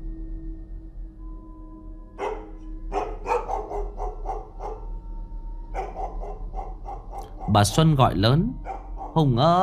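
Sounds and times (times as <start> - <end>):
steady low hum: 0.0 - 9.6
house dog barking outside: 2.2 - 5.0, 5.7 - 7.6, 8.6 - 9.2
speech: 7.5 - 9.6.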